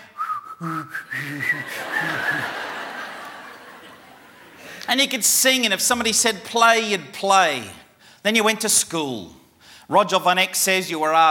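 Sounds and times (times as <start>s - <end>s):
breathy whistle with a hum of voice: 0.0s - 2.6s
speech: 0.6s - 2.7s, 4.9s - 11.3s
laughter: 1.2s - 4.9s.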